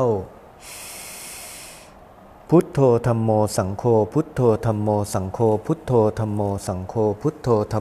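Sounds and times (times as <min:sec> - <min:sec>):
speech: 0:00.0 - 0:00.8, 0:02.5 - 0:07.7
deep inhalation through the nose during a guided breathing meditation: 0:00.6 - 0:02.0.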